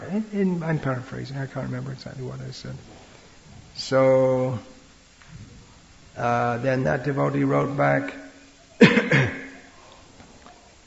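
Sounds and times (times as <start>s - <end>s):
speech: 0.1s - 3.0s, 3.8s - 4.8s, 6.2s - 8.2s
person coughing: 8.8s - 9.7s.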